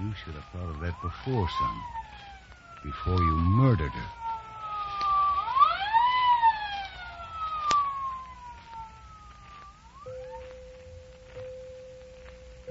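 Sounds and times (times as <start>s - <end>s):
ambulance siren wailing: 0.0s - 12.6s
speech: 0.1s - 2.2s, 2.8s - 4.2s.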